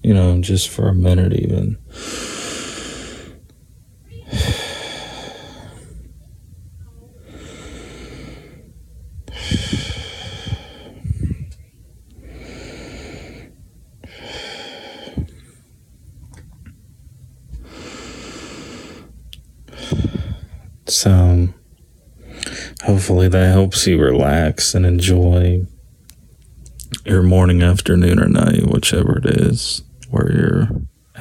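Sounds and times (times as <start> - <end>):
speech: 0.1 - 2.3, 23.1 - 25.8, 27.1 - 31.2
slow deep breathing in and out: 1.8 - 3.5, 4.2 - 6.4, 7.0 - 15.9, 17.5 - 20.8, 22.2 - 22.9.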